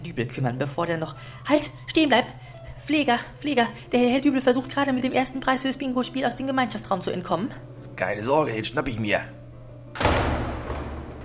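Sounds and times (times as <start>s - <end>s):
speech: 0.2s - 9.4s
door shutting with a solid thud: 10.0s - 11.2s.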